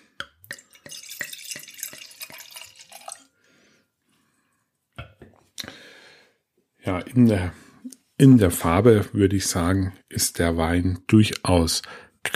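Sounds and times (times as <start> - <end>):
white wine pouring into a glass from a screw-cap bottle: 0.4 - 3.4
glass clink: 0.5 - 3.3
speech: 6.9 - 7.6, 8.2 - 12.3.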